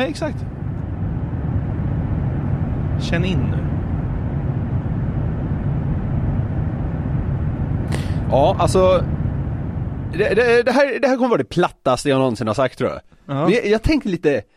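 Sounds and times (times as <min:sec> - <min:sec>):
speech: 0:00.0 - 0:00.6, 0:03.0 - 0:03.6, 0:08.3 - 0:09.1, 0:10.1 - 0:14.5
airplane cabin engine drone: 0:00.0 - 0:10.7.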